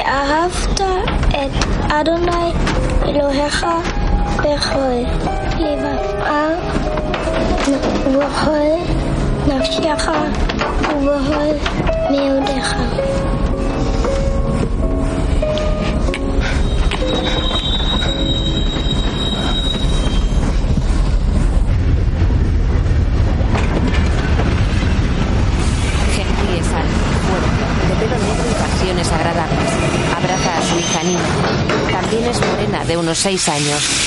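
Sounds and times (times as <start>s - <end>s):
train wheels rolling on rails and coming to a halt: 0.0s - 34.0s
speech: 1.5s - 13.6s, 29.0s - 34.0s
metallic squeal of train wheels: 16.4s - 20.7s, 29.7s - 31.5s.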